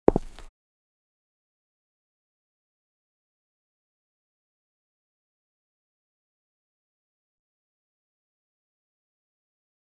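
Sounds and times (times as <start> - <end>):
footstep on concrete: 0.0 - 0.5.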